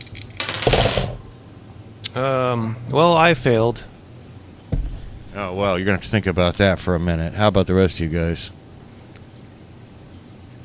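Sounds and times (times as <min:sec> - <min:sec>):
dice clattering and tumbling across a hard surface in a game: 0:00.0 - 0:01.3
speech: 0:02.1 - 0:03.9, 0:05.4 - 0:08.6.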